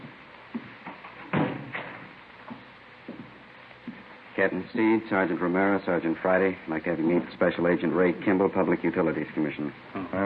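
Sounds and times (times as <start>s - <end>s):
door swinging shut with a dull solid thud: 1.2s - 2.1s
speech: 4.4s - 10.2s.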